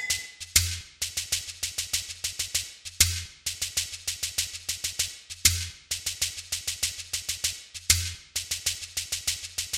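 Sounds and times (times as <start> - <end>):
chekere beaded gourd instrument: 0.1 - 9.7.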